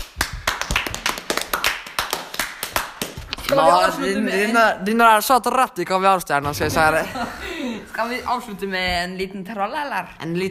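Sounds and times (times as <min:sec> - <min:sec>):
hand clapping by one or two people: 0:00.0 - 0:03.8
speech: 0:03.5 - 0:10.5
laughter: 0:06.6 - 0:08.1.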